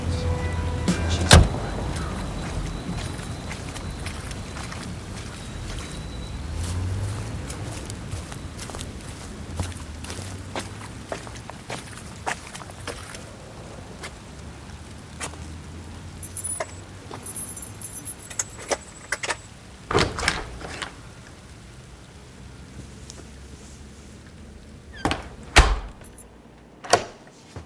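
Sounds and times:
constant hiss of rainfall: 0.0s - 26.8s
front door of a house clattering open: 0.8s - 3.6s, 17.2s - 21.0s, 24.9s - 27.6s
footsteps walking through falling rain: 0.9s - 19.5s
keys jingling: 16.2s - 19.4s.

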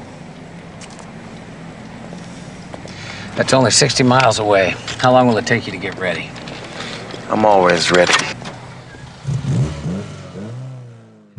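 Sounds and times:
speech: 3.4s - 6.4s, 7.3s - 8.3s
car engine revving and accelerating away: 9.0s - 11.3s.

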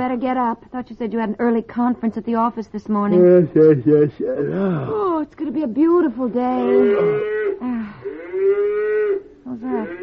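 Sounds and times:
speech: 0.0s - 8.6s, 9.5s - 10.0s
cow mooing: 6.6s - 10.0s.

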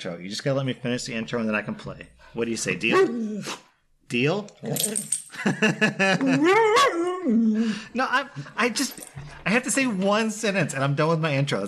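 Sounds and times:
speech: 0.0s - 11.6s
puppy yapping in high sharp barks: 2.9s - 3.2s
laughter: 5.3s - 6.8s.

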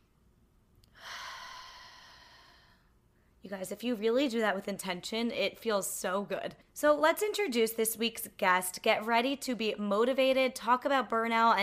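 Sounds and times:
deep breath during a guided breathing exercise: 0.9s - 3.4s
speech: 3.5s - 11.6s.

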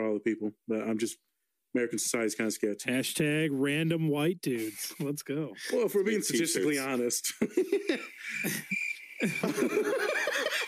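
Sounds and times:
speech: 0.0s - 10.6s
people chuckling and laughing loudly: 4.6s - 10.6s
steady high cricket chirp sound effect: 5.6s - 10.6s.

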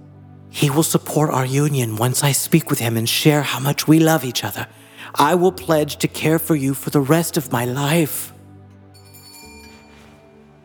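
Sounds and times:
speech: 0.5s - 8.3s
bell ringing with sustained metallic tone: 9.0s - 10.2s.

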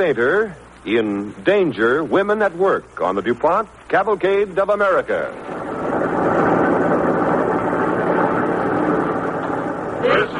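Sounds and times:
speech: 0.0s - 5.6s
heavy truck engine rumbling: 5.3s - 10.3s.

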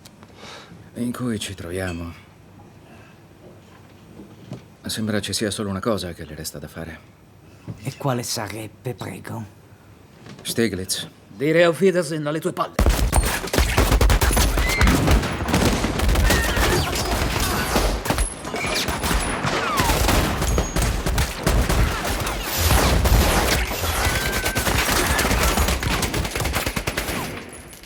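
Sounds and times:
speech: 1.0s - 2.3s, 4.9s - 7.2s, 7.8s - 9.6s, 10.5s - 13.7s
gunfire volleys from a film scene: 12.8s - 27.7s.

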